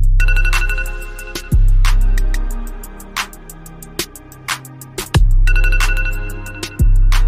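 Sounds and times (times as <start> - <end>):
iPhone alarm remix: 0.2 - 1.8, 5.4 - 7.1.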